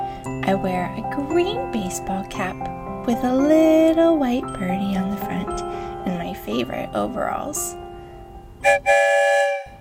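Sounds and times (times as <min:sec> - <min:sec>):
speech: 0:00.5 - 0:05.8, 0:06.5 - 0:07.8, 0:08.6 - 0:09.5
train whistle blowing as a train leaves a station: 0:08.6 - 0:09.7.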